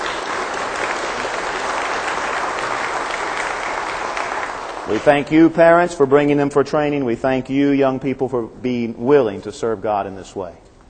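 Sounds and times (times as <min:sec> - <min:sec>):
room full of people applauding politely: 0:00.0 - 0:05.5
speech: 0:04.9 - 0:10.7.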